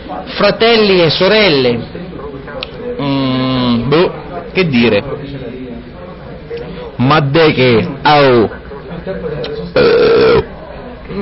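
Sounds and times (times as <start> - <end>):
murmur: 0.0 - 11.2
speech: 0.1 - 2.0, 3.9 - 5.1, 7.0 - 9.9
loud drawn-out burp caused by eating sandwiches: 9.8 - 10.5.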